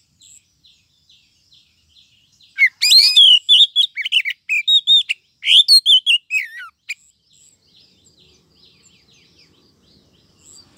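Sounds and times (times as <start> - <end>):
female Oriental magpie-robin giving bright whistles and scratchy chattering notes: 2.5 - 7.0.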